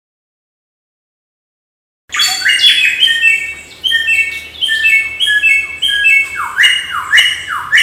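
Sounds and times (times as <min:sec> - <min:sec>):
samyong bird song: 0:02.1 - 0:07.8.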